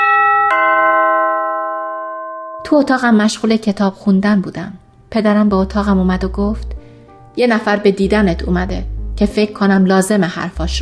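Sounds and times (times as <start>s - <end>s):
house doorbell two-tone chime: 0.0s - 2.9s
speech: 2.7s - 6.8s, 7.4s - 10.8s.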